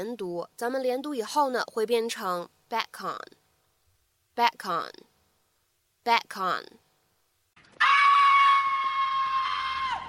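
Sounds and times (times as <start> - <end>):
speech: 0.0 - 3.4, 4.4 - 5.1, 6.0 - 6.8
cat screeching while attacked by coyotes: 7.8 - 10.0.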